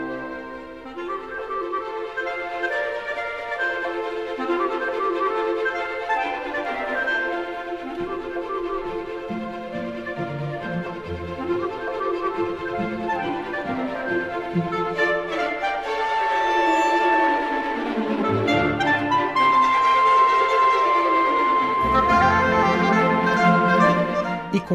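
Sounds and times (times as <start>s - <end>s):
clarinet melody in a symphony's second movement: 0.0s - 24.7s
energetic string orchestra accompanying a clarinet: 0.0s - 24.7s.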